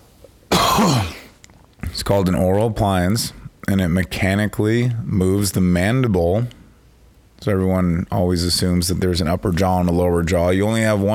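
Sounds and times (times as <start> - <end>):
single harsh raspy cough: 0.5 - 1.4
speech: 2.0 - 6.6, 7.4 - 11.1.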